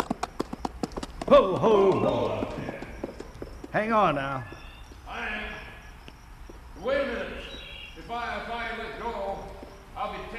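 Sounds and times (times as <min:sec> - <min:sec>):
horse hooves clip-clopping at a walking pace: 0:00.0 - 0:05.0, 0:09.1 - 0:10.3
speech: 0:01.3 - 0:02.6, 0:03.7 - 0:04.6, 0:06.8 - 0:07.3, 0:08.1 - 0:09.4.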